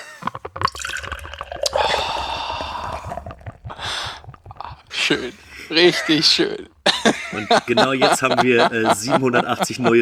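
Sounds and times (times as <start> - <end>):
beer pouring from an unwieldy bottle: 0.0 - 6.8
beer bottle clicks and knocks: 0.3 - 5.0
laughter: 1.8 - 10.0
speech: 5.1 - 6.7, 7.4 - 10.0.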